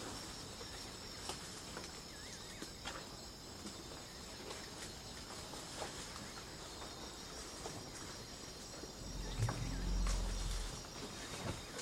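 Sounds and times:
faint insect hiss: 0.0 - 11.8
African elephant fart in the African savanna: 9.0 - 10.8.

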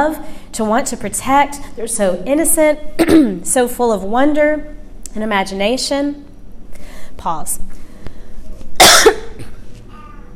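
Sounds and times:
speech: 0.0 - 6.3, 7.2 - 7.8
person with a cough drop in their mouth coughing: 3.0 - 3.4, 8.8 - 10.3.

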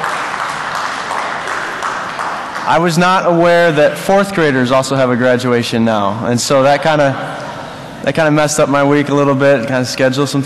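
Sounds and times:
crowd clapping steadily: 0.0 - 3.5
speech: 2.6 - 7.4, 8.0 - 10.4.

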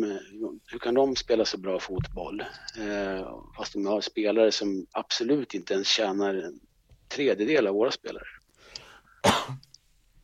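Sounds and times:
speech: 0.0 - 8.4, 9.2 - 9.6
person clearing throat: 9.2 - 9.7
person coughing: 9.2 - 9.7.

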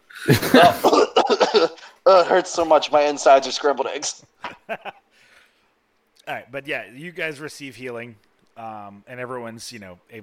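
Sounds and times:
person acting out a wet sputtering cough as if coughing up blood: 0.2 - 2.0
speech: 0.2 - 5.0, 6.3 - 10.2.

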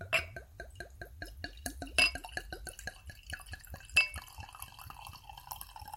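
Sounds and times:
wine poured into a wine glass: 0.2 - 5.9.

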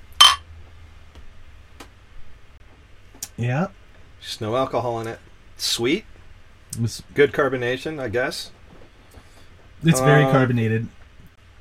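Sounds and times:
quiet low hum: 0.0 - 11.5
glasses clinking in a toast: 0.1 - 0.4
speech: 3.4 - 6.1, 6.7 - 8.6, 9.8 - 11.0.

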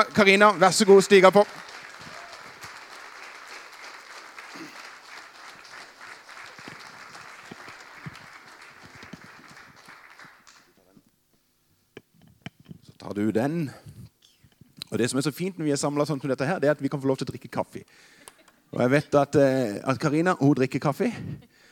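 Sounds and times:
speech: 0.0 - 1.6, 13.3 - 13.9, 14.9 - 21.5
audience applause welcoming a talent-show finalist: 0.0 - 10.8.

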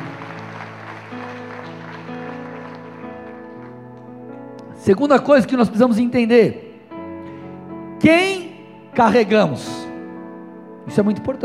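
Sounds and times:
crowd clapping and applauding: 0.0 - 4.3
sustained keyboard chords: 0.0 - 11.4
speech: 4.8 - 6.6, 8.0 - 8.4, 9.0 - 9.8, 10.9 - 11.4.

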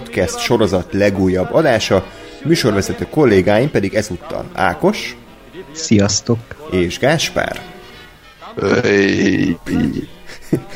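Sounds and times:
speech: 0.2 - 7.7, 8.6 - 10.7
woman's voice breaking up in Skype audio glitch: 8.6 - 10.1
laughter: 8.6 - 10.7.

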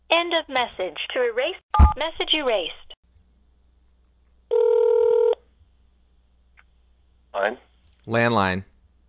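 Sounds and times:
speech: 0.1 - 2.8, 7.4 - 8.7
landline telephone ringing with electronic tone: 4.5 - 5.4.

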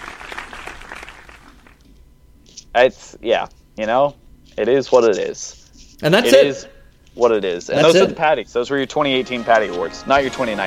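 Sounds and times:
hands clapping: 0.0 - 1.8
speech: 2.8 - 10.6.

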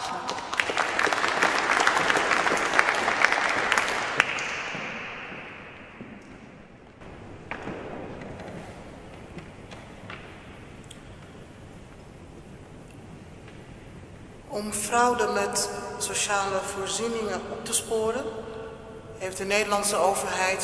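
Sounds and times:
audience applause welcoming a guest: 0.0 - 5.5
speech: 14.6 - 18.6, 19.2 - 20.6.

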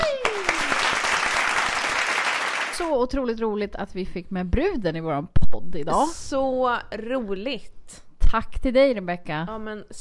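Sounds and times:
applause from a small group: 0.0 - 2.9
speech: 2.8 - 9.9.

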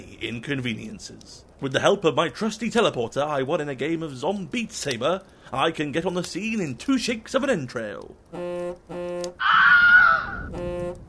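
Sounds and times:
speech: 0.2 - 8.5
person screaming shrilly: 9.4 - 10.5.

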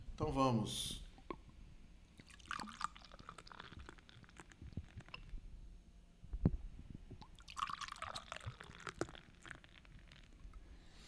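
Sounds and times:
speech: 0.2 - 1.0
beer being poured into glasses: 2.2 - 5.1, 7.3 - 10.4.

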